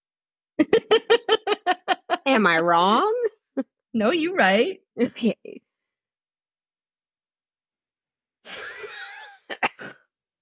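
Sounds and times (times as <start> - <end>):
speech: 0.6 - 0.8, 2.4 - 5.6
laughter: 0.6 - 2.3
wet phlegmy cough: 9.5 - 10.1.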